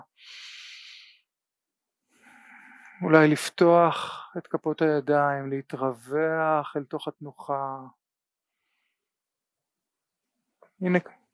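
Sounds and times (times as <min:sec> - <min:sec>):
deep inhale during guided relaxation practice: 0:00.2 - 0:01.3, 0:02.1 - 0:03.0
speech: 0:03.0 - 0:08.0, 0:10.8 - 0:11.2.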